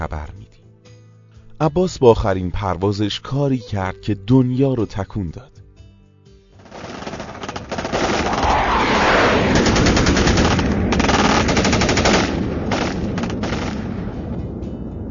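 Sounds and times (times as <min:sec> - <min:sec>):
speech: 0:00.0 - 0:00.8, 0:01.6 - 0:05.6
heavy anti-aircraft gunfire at range: 0:06.6 - 0:14.3.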